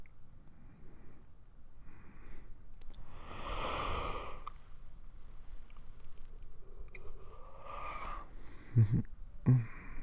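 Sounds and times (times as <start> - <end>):
slow deep breaths: 0.6 - 4.8, 6.6 - 10.0.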